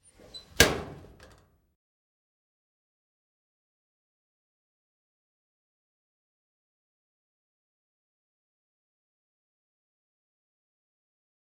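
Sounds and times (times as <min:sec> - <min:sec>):
locker door closing: 0:00.0 - 0:01.4.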